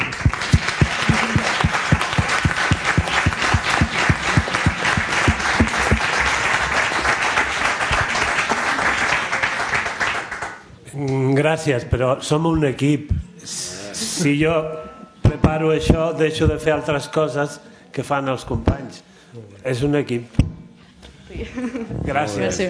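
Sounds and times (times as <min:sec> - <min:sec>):
audience applause at a library-organized gathering: 0:00.0 - 0:10.6
speech: 0:11.5 - 0:13.6, 0:14.2 - 0:14.9, 0:15.5 - 0:20.4, 0:21.4 - 0:22.6.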